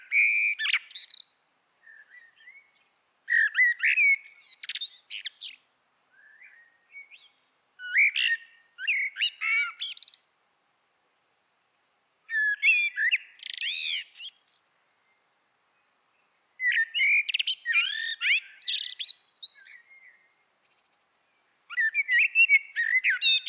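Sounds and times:
common blackbird Turdus merula singing: 0.0 - 5.6, 6.2 - 10.2, 12.3 - 15.2, 16.0 - 23.4.

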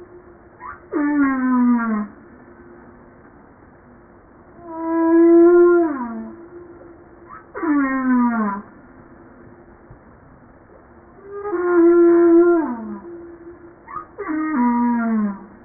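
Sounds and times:
humpback whale song units: 0.0 - 2.2, 4.6 - 8.8, 11.2 - 15.6.

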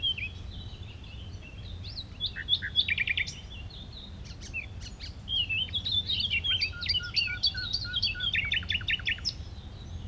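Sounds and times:
common nightingale song: 0.0 - 10.0.

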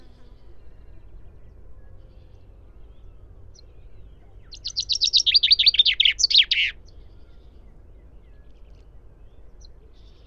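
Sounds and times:
common chaffinch Fringilla coelebs song: 3.6 - 7.0.

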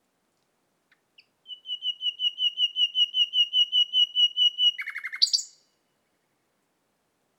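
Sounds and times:
Common nightingale Luscinia megarhynchos song: 0.9 - 6.1.

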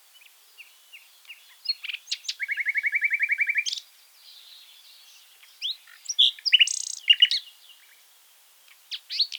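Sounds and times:
common nightingale Luscinia megarhynchos singing: 0.6 - 3.8, 5.6 - 7.9.

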